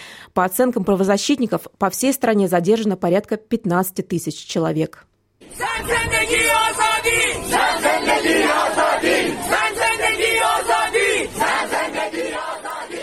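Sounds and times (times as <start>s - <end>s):
speech: 0.4s - 6.2s
protest crowd chanting a slogan in unison: 5.4s - 13.0s.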